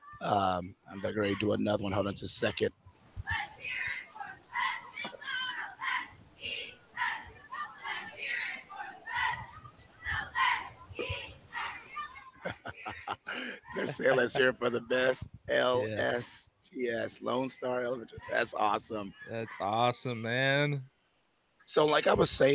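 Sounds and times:
speech: 0.2 - 3.8, 13.8 - 20.9, 21.7 - 22.5
elementary school group shouting a team cheer in unison: 3.3 - 6.1, 6.9 - 12.4
laughter: 12.3 - 16.2.

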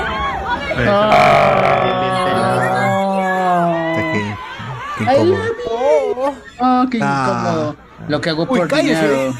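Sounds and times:
audience shouting at full strength: 0.0 - 6.4
speech: 0.8 - 1.9, 5.0 - 5.5, 6.2 - 9.3.

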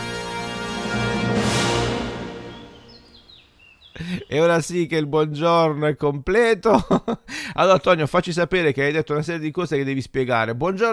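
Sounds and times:
airy whoosh: 0.5 - 3.3
high downward-gliding bird chirps: 2.4 - 4.4
speech: 4.3 - 10.9
laughter: 6.7 - 7.2.

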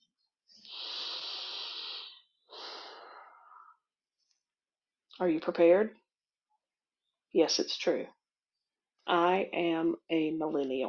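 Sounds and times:
deep breath: 0.5 - 3.9
speech: 5.2 - 6.0, 7.3 - 8.2, 9.1 - 10.8.

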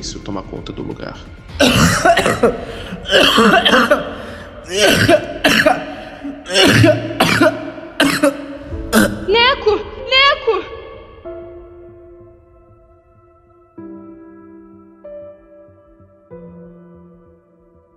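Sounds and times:
speech: 0.0 - 5.8, 6.5 - 7.6
man coughing heavily in a prolonged fit: 1.5 - 9.2.

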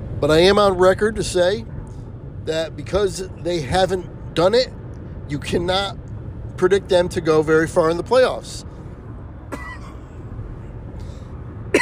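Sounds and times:
speech: 0.2 - 1.7, 2.4 - 6.0, 6.6 - 8.7
person coughing: 9.5 - 10.2.

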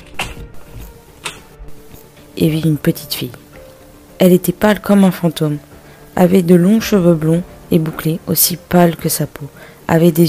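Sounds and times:
old wooden front door creaking as it swings: 0.0 - 1.9
speech: 2.4 - 3.4, 4.2 - 10.2.

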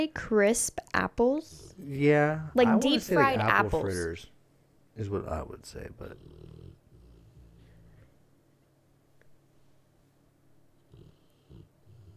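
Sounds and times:
speech: 0.0 - 4.3, 5.0 - 6.7
sleeping female dog snoring softly: 5.8 - 8.2, 10.8 - 12.1.

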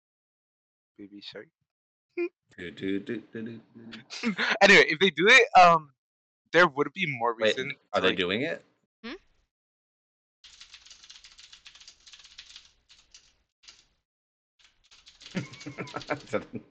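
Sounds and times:
speech: 1.0 - 1.6, 2.2 - 9.2, 15.4 - 16.6
laughter: 2.6 - 5.7, 6.6 - 8.6, 15.4 - 16.6
rapid intense typing on a keyboard: 10.5 - 13.9, 14.6 - 16.6.

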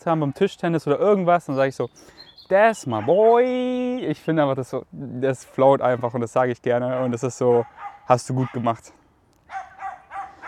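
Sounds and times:
speech: 0.0 - 9.0
dog barking: 2.9 - 3.3, 6.9 - 8.8, 9.5 - 10.4.

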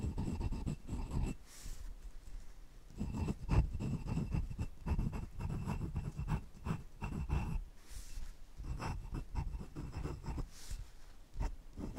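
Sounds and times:
glass, fountain, ballpoint and gel pens scratching across paper: 0.0 - 1.4, 3.0 - 7.6, 8.6 - 10.7, 11.4 - 11.9.

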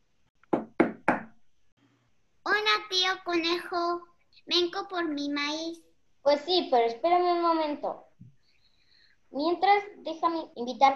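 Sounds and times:
knocking on a wooden door: 0.5 - 1.4
speech: 2.9 - 8.0, 9.3 - 10.9.

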